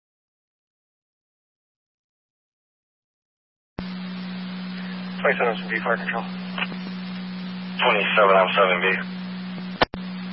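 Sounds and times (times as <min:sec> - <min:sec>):
radio crackling burst: 0:03.8 - 0:10.3
speech: 0:05.2 - 0:06.7, 0:07.8 - 0:09.2.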